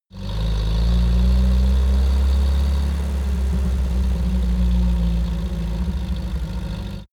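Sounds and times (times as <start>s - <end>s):
UAZ 469 car driving and decelerating: 0.2s - 7.1s.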